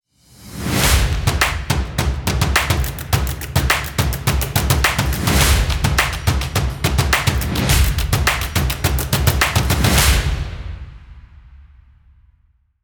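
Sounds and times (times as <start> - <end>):
percussion logo jingle: 0.8 - 10.9.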